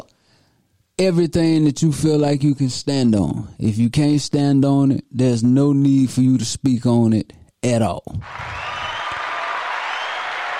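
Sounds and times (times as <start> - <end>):
speech: 1.0 - 8.6
crowd applauding with many hands clapping: 8.2 - 10.5.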